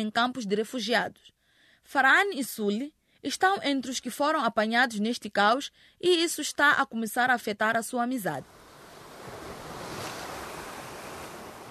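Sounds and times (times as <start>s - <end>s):
speech: 0.0s - 8.6s
rough sea waves crashing: 8.4s - 11.6s
wind hissing over water: 8.4s - 11.6s.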